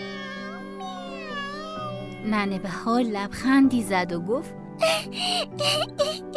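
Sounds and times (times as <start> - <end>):
cat meowing inside a storeroom: 0.0 - 2.8
speech: 2.2 - 6.3.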